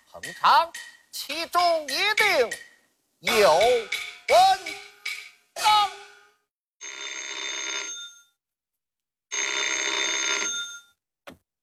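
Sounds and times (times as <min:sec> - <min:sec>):
speech: 0:00.2 - 0:04.8
telephone bell ringing: 0:06.8 - 0:08.4, 0:09.3 - 0:11.0.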